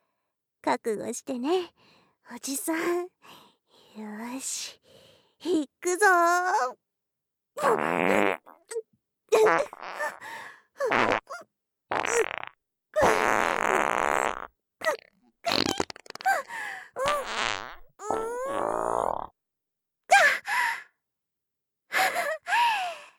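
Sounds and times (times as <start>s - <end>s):
speech: 0.6s - 3.4s, 4.0s - 6.8s, 7.6s - 12.4s
loud farts: 7.8s - 8.5s, 11.9s - 14.5s, 15.5s - 16.3s, 17.0s - 19.3s
person gasping and sighing: 16.2s - 17.0s, 21.9s - 23.1s.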